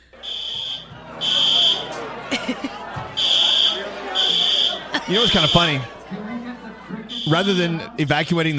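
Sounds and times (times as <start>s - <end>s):
crowd chatter and party noise: 0.0s - 8.5s
piercing electronic fire alarm blaring during a party: 0.1s - 2.0s, 3.1s - 5.9s, 7.0s - 7.9s
laughter: 0.2s - 8.1s
speech: 5.1s - 6.0s, 7.2s - 8.5s.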